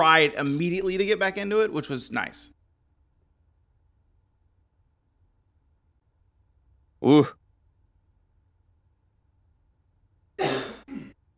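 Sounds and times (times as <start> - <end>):
speech: 0.0 - 2.6, 7.0 - 7.4
cough made away from the microphone: 10.4 - 11.2.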